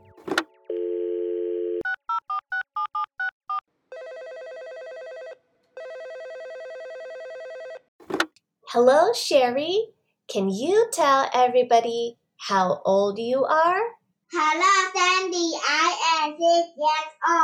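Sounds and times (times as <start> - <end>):
phone being picked up: 0.0 - 0.5, 8.0 - 8.3
telephone dial tone: 0.7 - 7.8
speech: 8.7 - 13.8, 14.5 - 17.4.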